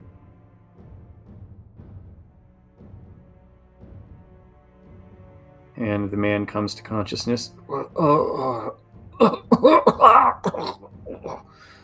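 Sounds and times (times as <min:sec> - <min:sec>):
speech: 0:05.8 - 0:10.8
voice imitating a man coughing up blood: 0:07.7 - 0:11.5
voice imitating a man groaning: 0:07.7 - 0:11.6
voice imitating weak gasps: 0:07.7 - 0:11.8.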